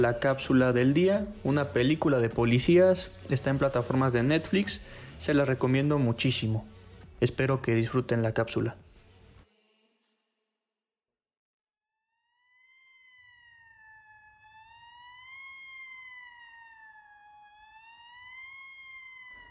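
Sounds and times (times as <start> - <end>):
police siren wailing: 0.0 - 6.7, 12.4 - 19.4
speech: 0.0 - 8.8.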